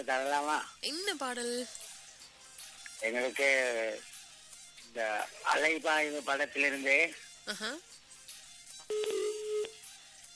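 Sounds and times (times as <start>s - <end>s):
speech: 0.0s - 1.9s, 3.0s - 4.1s, 4.9s - 7.9s
phone call disconnect tone: 8.9s - 9.7s
phone line clicks as a call cuts off: 8.9s - 9.8s.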